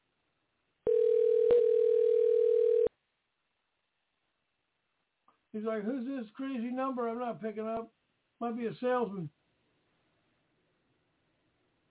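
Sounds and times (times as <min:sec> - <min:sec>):
telephone ringback tone on an outgoing call: 0:00.9 - 0:02.9
speech: 0:05.5 - 0:09.4.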